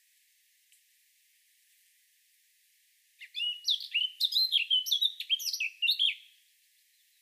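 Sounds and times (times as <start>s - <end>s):
Eurasian blackcap Sylvia atricapilla song of varied whistled and chattering notes: 3.2s - 7.2s.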